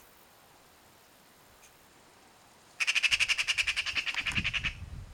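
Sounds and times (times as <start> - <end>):
Pica pica rasping rattle chatter: 2.8 - 4.8.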